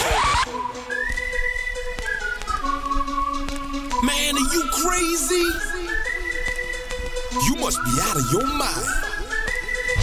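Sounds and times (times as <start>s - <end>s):
thumping electronic dance beat with rhythmic kicks: 0.2s - 10.0s
loud whistled melody of sustained gliding notes: 0.4s - 10.0s
speech: 7.5s - 9.0s.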